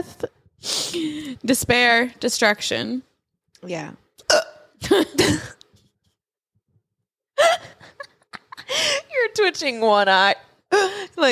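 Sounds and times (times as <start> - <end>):
speech: 1.0 - 4.0, 4.9 - 5.6, 9.4 - 11.3
sharp hiccups: 4.2 - 5.4.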